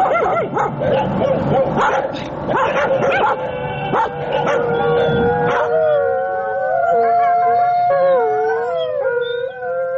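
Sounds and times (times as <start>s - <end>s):
stray dogs howling: 0.0s - 9.9s.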